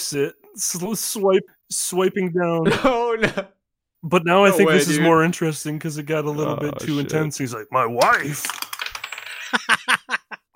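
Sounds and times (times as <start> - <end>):
speech: 0.1 - 8.6
laughter: 2.6 - 3.5, 9.3 - 10.5
dice rattling: 8.2 - 9.3.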